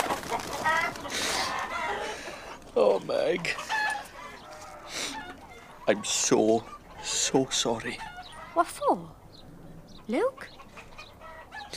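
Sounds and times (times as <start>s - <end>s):
chicken clucking and squawking: 0.0s - 11.7s
speech: 3.0s - 3.7s, 5.9s - 9.2s, 10.1s - 10.6s.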